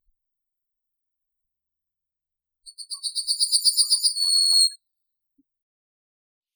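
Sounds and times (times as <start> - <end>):
yellowhammer Emberiza citrinella singing: 2.9 - 4.7.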